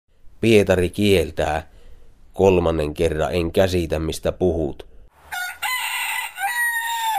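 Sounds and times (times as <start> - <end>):
speech: 0.4 - 1.7, 2.4 - 5.6
rooster crowing: 5.2 - 7.1.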